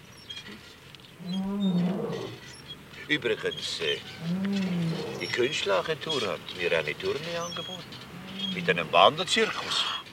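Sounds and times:
lion roaring: 0:01.2 - 0:02.4, 0:04.2 - 0:05.6, 0:07.4 - 0:09.0
speech: 0:03.1 - 0:10.0.

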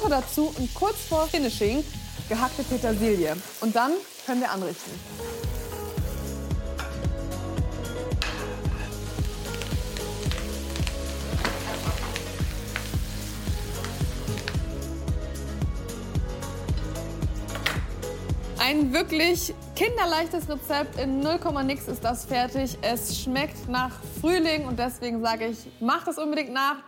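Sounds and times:
potatoes sizzling in a frying pan over medium heat: 0:00.0 - 0:06.6, 0:08.3 - 0:14.9
soft music: 0:00.0 - 0:26.8
speech: 0:00.1 - 0:05.3, 0:18.7 - 0:26.8.

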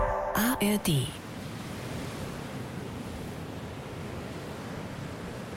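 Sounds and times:
wind on the Baltic Sea coast of Bornholm on a cold wet windy February day: 0:00.2 - 0:05.5
speech: 0:00.6 - 0:01.2
surf breaking on the Baltic Sea coast of Bornholm: 0:01.2 - 0:05.5.

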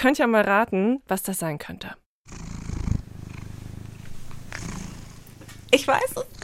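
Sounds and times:
speech: 0:00.0 - 0:02.5, 0:05.7 - 0:06.4
cat purring: 0:02.2 - 0:06.4.

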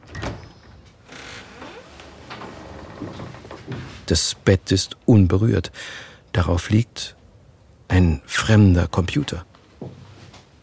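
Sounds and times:
bedroom door swinging open with a low scraping creak: 0:00.0 - 0:04.1
speech: 0:04.1 - 0:07.2, 0:07.9 - 0:10.0.

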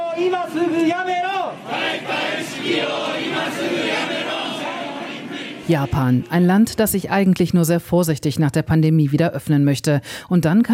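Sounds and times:
crowd of protesters in Tokyo chanting and shouting during the Olympic Games: 0:00.0 - 0:06.8
speech: 0:00.2 - 0:04.3, 0:05.7 - 0:10.7.

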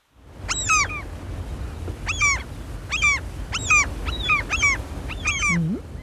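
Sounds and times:
low rumbling background: 0:01.2 - 0:06.0
black-headed gull giving harsh nasal calls: 0:02.1 - 0:06.0.

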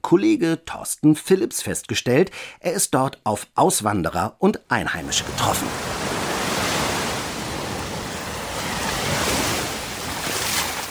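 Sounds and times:
speech: 0:00.1 - 0:06.1
surf washing onto a coast: 0:04.9 - 0:10.9.

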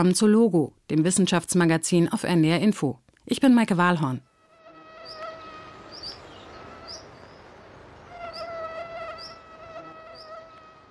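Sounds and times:
speech: 0:00.0 - 0:04.3
high-pitched mosquito whine: 0:04.2 - 0:10.8.

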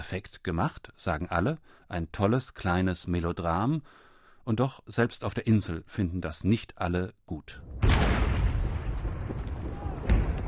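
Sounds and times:
speech: 0:00.0 - 0:08.2
distant cannon artillery fire rumbling: 0:07.7 - 0:10.4.

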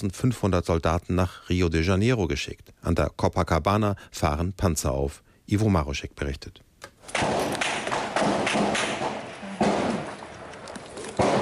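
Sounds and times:
speech: 0:00.0 - 0:07.5
dense noisy outdoor urban background: 0:00.0 - 0:11.3
gunshots echoing across an urban area in a favela: 0:07.0 - 0:11.3.

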